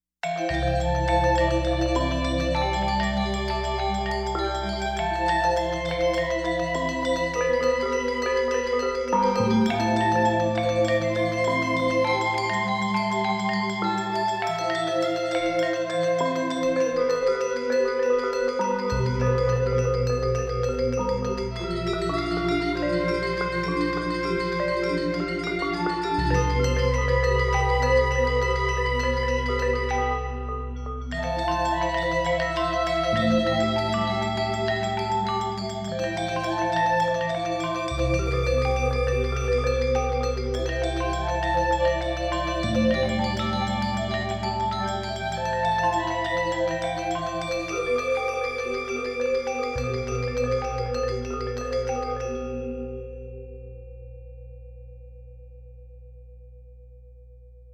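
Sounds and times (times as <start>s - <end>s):
gamelan violin: 0.2s - 53.0s.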